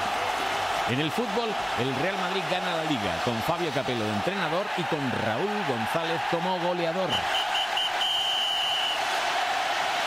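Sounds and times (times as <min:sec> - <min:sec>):
large stadium crowd roaring at a football match: 0:00.0 - 0:10.0
speech: 0:00.9 - 0:07.4
referee's final whistle at a football match: 0:07.1 - 0:09.0.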